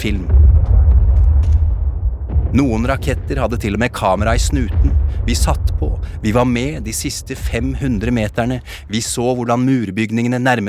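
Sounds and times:
speech: 0.0s - 0.4s, 2.5s - 10.6s
explosion rumble: 0.0s - 9.7s
crackles and pops: 0.1s - 8.6s.

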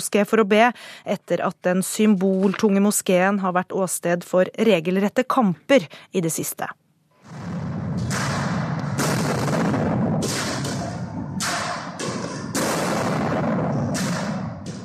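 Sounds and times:
speech: 0.0s - 7.6s
loud continuous rumbling din inside a mosque: 7.2s - 14.8s
tear gas launcher shots as police disperse worshippers in a mosque: 7.2s - 14.8s
gunfire inside a smoke-filled mosque: 7.3s - 14.8s.

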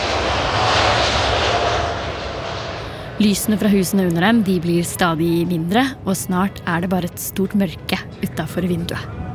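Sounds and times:
large jet roaring during takeoff from runway: 0.0s - 5.1s
speech: 3.2s - 9.2s.

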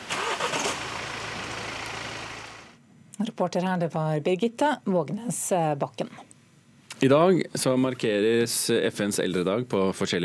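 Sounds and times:
car engine starting for a driving lesson: 0.0s - 2.8s
speech: 3.2s - 6.3s, 7.0s - 10.2s.

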